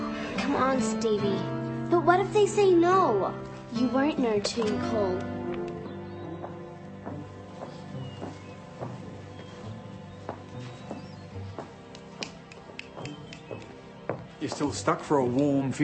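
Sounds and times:
speech: 0.5 - 5.3, 14.6 - 15.8
horse hooves clopping walking into a stable: 3.2 - 15.8.

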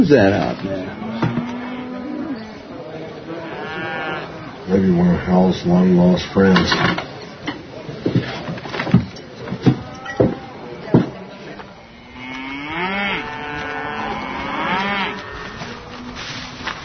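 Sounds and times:
speech: 0.0 - 0.8, 4.7 - 7.1
cow mooing: 0.8 - 2.5, 3.4 - 4.4, 11.9 - 16.6
sharp irregular knocks and clatters: 6.5 - 11.2.

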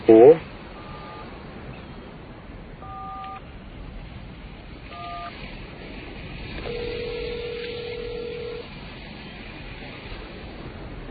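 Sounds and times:
constant hiss of noise: 0.0 - 11.0
speech: 0.1 - 0.5
longer steady telephone tone: 0.1 - 1.3, 2.8 - 3.4, 4.9 - 5.3, 6.6 - 8.6
touch-tone beeps of a phone number being dialed: 0.8 - 1.3, 2.8 - 3.4, 4.9 - 5.3, 6.6 - 8.6.

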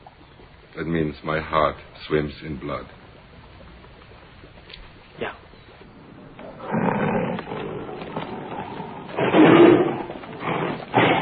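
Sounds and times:
speech: 0.8 - 3.0
Bengal tiger roaring: 6.0 - 11.2.

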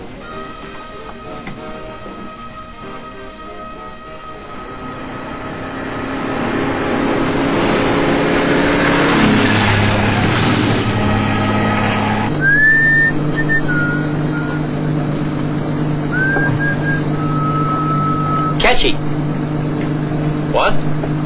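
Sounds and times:
hum: 0.0 - 21.2
low engine rumble: 0.0 - 21.2
person whistling a slow wandering tune: 12.3 - 15.0, 16.1 - 18.6.

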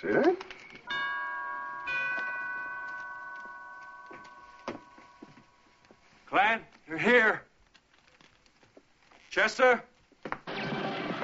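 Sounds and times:
speech: 0.0 - 0.6, 6.3 - 7.5, 9.4 - 9.9
two-tone doorbell chime: 0.9 - 5.4.

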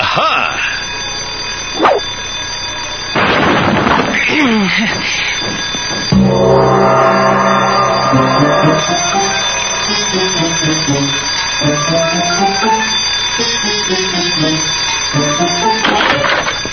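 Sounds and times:
loud school bell chime playing a melodic tune: 0.0 - 3.3, 4.4 - 16.7
speech: 4.7 - 5.3, 8.1 - 9.2, 9.9 - 16.4
brief noisy burst: 6.1 - 12.7.

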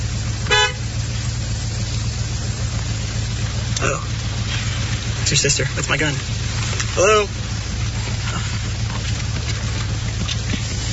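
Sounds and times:
steady low engine rumble: 0.0 - 10.9
car horn honk: 0.4 - 0.9
speech: 3.8 - 4.1, 5.3 - 6.4, 7.0 - 7.4.

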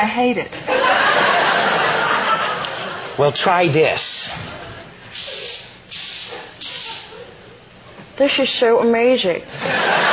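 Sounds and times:
speech: 0.0 - 1.0, 3.2 - 4.5, 8.2 - 10.0
laughter: 0.6 - 3.3, 6.4 - 7.7, 9.5 - 10.1
hairspray hissing from an aerosol can: 5.1 - 7.2.

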